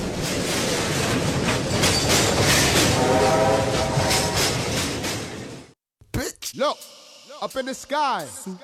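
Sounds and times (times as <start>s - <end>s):
train departing with a rushing rattling roar: 0.0s - 5.8s
train horn sounding a sustained tone: 2.8s - 4.6s
speech: 7.4s - 8.6s.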